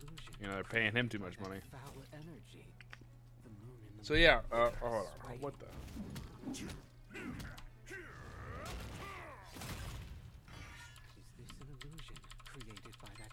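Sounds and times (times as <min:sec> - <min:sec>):
rapid continuous computer keyboard clicking: 0:00.0 - 0:00.8, 0:10.9 - 0:13.3
speech: 0:00.4 - 0:02.9, 0:04.0 - 0:07.6.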